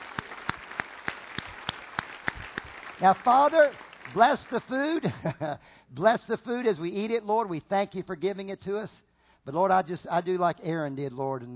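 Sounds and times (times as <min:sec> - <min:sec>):
rhythmic clapping from a church congregation: 0:00.0 - 0:05.2
speech: 0:03.0 - 0:11.5.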